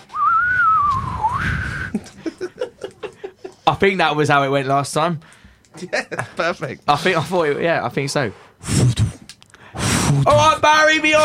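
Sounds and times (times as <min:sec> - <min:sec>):
person whistling: 0:00.1 - 0:02.0
person chuckling: 0:01.7 - 0:03.7
speech: 0:03.8 - 0:08.8, 0:10.2 - 0:11.2.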